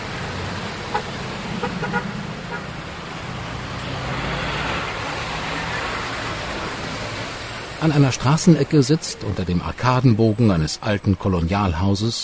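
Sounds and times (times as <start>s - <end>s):
cars and buses speeding past on street: 0.0s - 12.2s
speech: 7.8s - 12.2s.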